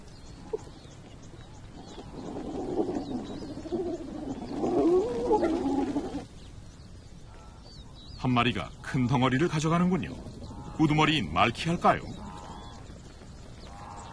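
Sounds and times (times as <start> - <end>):
pack of hyenas squealing and whooping as they rush in to feed: 1.8 - 6.3
speech: 8.2 - 12.2.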